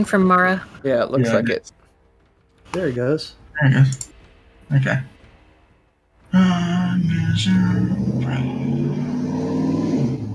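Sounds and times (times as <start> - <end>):
speech: 0.0 - 1.8, 2.7 - 4.1, 4.7 - 5.1, 6.3 - 9.2
car engine revving hard in traffic heard through open windows: 6.2 - 10.3.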